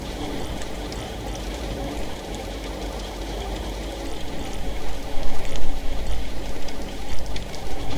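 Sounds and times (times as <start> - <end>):
light rain: 0.0 - 7.9.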